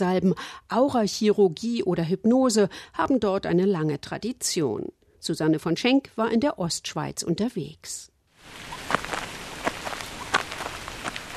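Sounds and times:
speech: 0.0s - 9.0s
steady outdoor rain pattering across a surface: 8.4s - 11.3s.

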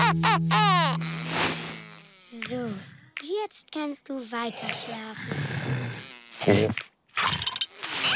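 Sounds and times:
fly buzzing loudly: 0.0s - 3.2s, 4.4s - 7.0s, 7.7s - 8.1s
speech: 2.8s - 7.6s.

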